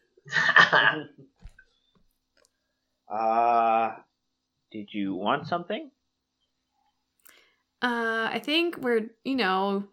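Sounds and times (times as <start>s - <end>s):
person giving a deliberate throat-clearing cough: 0.3s - 1.1s
speech: 0.3s - 1.4s, 3.1s - 4.1s, 4.7s - 5.9s, 7.8s - 9.9s.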